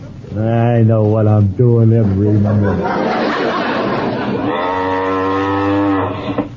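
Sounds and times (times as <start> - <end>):
speech: 0.4 - 3.1
laughter: 2.2 - 4.6
cow mooing: 4.3 - 6.5.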